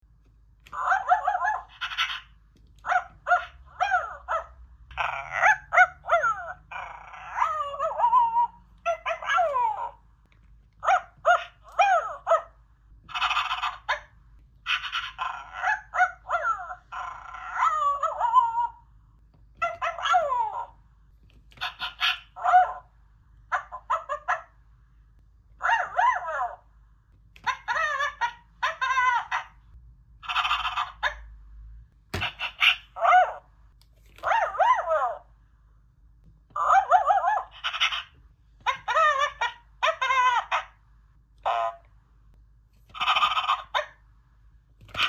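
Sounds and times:
toy dog barking: 0.7s - 10.0s, 10.8s - 14.1s, 14.7s - 18.9s, 19.6s - 20.8s, 21.5s - 24.6s, 25.6s - 26.7s, 27.4s - 31.3s, 32.2s - 33.5s, 34.2s - 35.3s, 36.5s - 40.8s, 41.4s - 41.9s, 42.9s - 44.0s, 44.9s - 45.0s.

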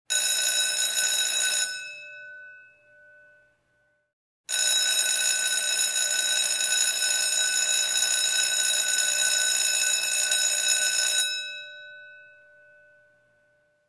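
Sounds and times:
school bell ringing: 0.1s - 2.8s, 4.5s - 12.5s.

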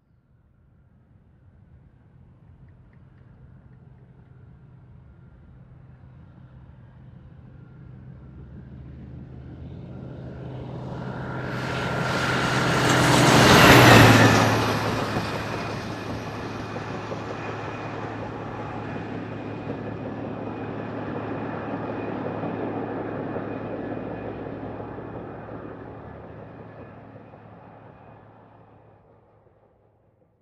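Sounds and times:
truck passing: 7.6s - 28.3s.

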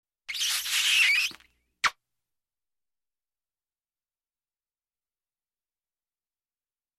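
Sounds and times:
kiss: 0.3s - 2.0s.

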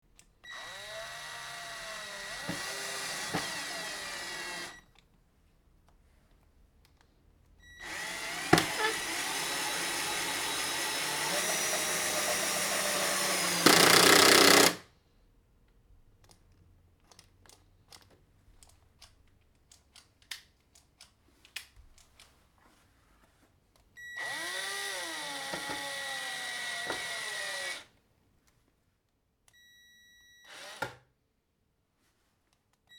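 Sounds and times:
cordless screwdriver: 0.5s - 4.8s, 7.8s - 14.8s, 24.2s - 27.9s, 30.4s - 31.0s.

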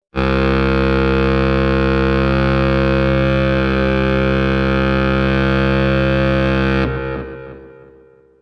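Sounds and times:
ship horn: 0.1s - 8.3s.

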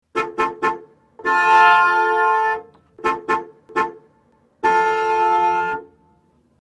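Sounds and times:
3d horn: 0.1s - 4.0s, 4.6s - 6.0s.

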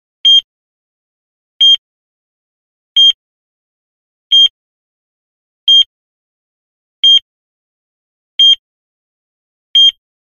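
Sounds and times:
heart monitor beeping: 0.2s - 0.5s, 1.6s - 1.8s, 3.0s - 3.2s, 4.3s - 4.6s, 5.7s - 5.9s, 8.4s - 8.6s, 9.8s - 10.0s.

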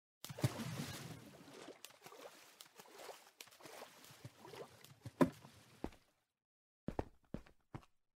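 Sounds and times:
footsteps in water: 0.2s - 6.1s.

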